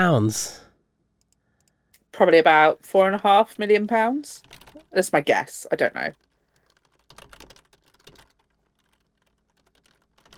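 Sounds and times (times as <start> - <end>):
speech: 0.0 - 0.6, 2.2 - 6.2
typing on a computer keyboard: 4.4 - 5.0, 6.1 - 10.3.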